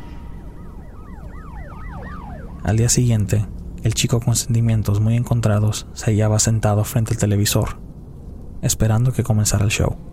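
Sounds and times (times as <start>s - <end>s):
police car siren wailing: 0.0s - 3.6s
steady low rumble of traffic: 0.0s - 10.1s
speech: 2.6s - 7.8s, 8.6s - 10.1s.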